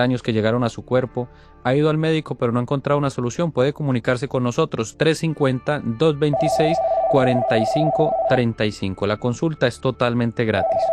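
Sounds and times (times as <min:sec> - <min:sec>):
speech: 0:00.0 - 0:10.9
electronic telephone ring tone of an incoming call on a phone-in line: 0:06.3 - 0:08.4, 0:10.6 - 0:10.9.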